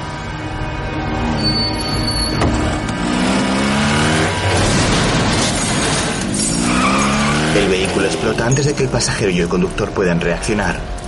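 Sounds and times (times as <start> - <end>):
traffic noise: 0.0 - 11.0
loud screeching tires: 1.0 - 9.8
motorcycle engine roaring and accelerating away from a red light: 2.3 - 8.3
speech: 7.6 - 11.0.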